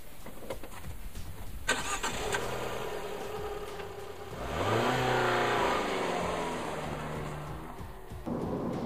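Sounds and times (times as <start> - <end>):
Cinquecento car engine starting, idling and accelerating: 1.6 - 8.6.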